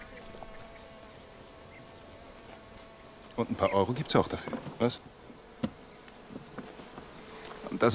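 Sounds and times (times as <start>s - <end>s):
bees buzzing around hives: 0.0s - 7.9s
speech: 3.4s - 5.2s, 7.8s - 7.9s
faint taps and knocks: 5.6s - 7.8s.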